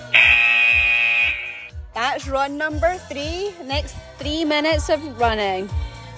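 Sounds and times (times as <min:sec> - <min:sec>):
loud steady electronic buzzer signalling start of run: 0:00.1 - 0:01.7
speech: 0:02.2 - 0:05.8.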